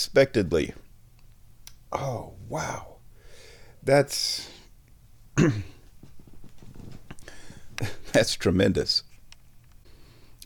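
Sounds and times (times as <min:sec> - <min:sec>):
speech: 0:00.0 - 0:00.8, 0:01.9 - 0:02.9, 0:03.8 - 0:04.6, 0:05.4 - 0:05.7, 0:07.8 - 0:09.1
breathing: 0:03.1 - 0:03.8, 0:07.2 - 0:07.8, 0:09.8 - 0:10.4
person with sinus trouble clearing throat: 0:05.4 - 0:05.9
faint low rustling: 0:05.6 - 0:08.1.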